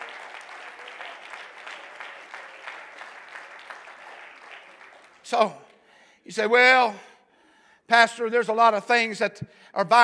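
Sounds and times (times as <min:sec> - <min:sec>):
large audience clapping hands: 0:00.0 - 0:05.9
speech: 0:05.3 - 0:05.6, 0:06.3 - 0:07.1, 0:07.9 - 0:10.0.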